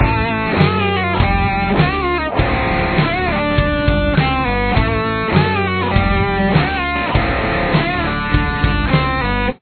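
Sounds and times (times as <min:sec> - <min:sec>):
musical solo: 0:00.0 - 0:09.5.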